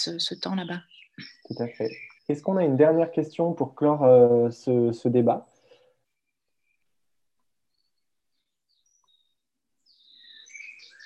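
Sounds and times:
small birds singing: 0.0 - 3.2, 5.3 - 6.8, 7.7 - 11.0
speech: 0.0 - 5.5.

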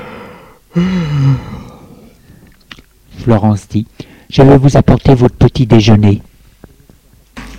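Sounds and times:
person yawning: 0.0 - 2.2
speech: 0.8 - 1.5, 3.2 - 6.3.

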